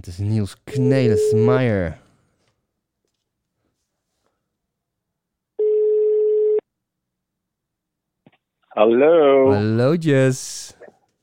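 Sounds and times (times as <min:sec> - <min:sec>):
speech: 0:00.0 - 0:02.0, 0:08.8 - 0:10.8
outgoing phone call ringing tone: 0:00.7 - 0:01.7, 0:05.6 - 0:06.6.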